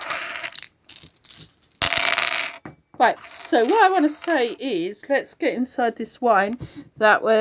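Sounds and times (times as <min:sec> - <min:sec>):
five dice rolling and clattering: 0:00.0 - 0:04.6
speech: 0:03.0 - 0:07.4.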